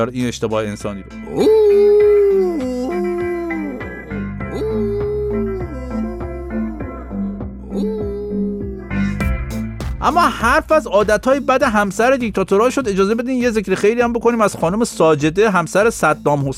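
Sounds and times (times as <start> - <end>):
speech: 0.0 - 2.0, 10.1 - 16.5
dog howling and whimpering: 1.3 - 8.9.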